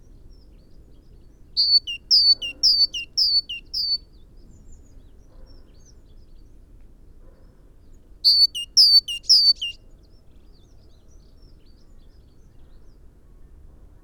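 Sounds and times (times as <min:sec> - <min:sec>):
speech: 0:01.6 - 0:02.9
great tit Parus major song: 0:01.6 - 0:04.0, 0:08.3 - 0:09.8.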